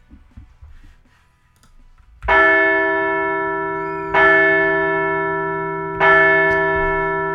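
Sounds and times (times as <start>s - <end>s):
large bell ringing: 2.3s - 7.3s.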